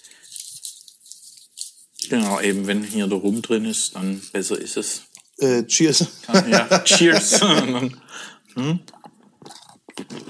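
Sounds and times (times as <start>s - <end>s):
speech: 2.0s - 9.0s
laughter: 6.2s - 8.0s
crunching and chewing a rum-filled chocolate praline: 8.9s - 10.2s.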